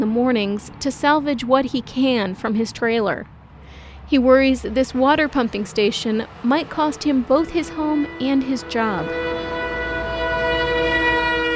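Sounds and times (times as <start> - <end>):
speech: 0.1 - 3.4, 4.1 - 9.5
passing truck horn blast: 6.9 - 11.5.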